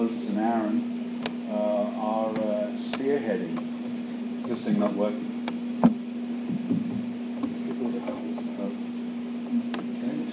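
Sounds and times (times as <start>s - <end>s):
air conditioner hum: 0.0s - 10.3s
speech: 4.5s - 5.3s
small knocks: 5.8s - 8.5s.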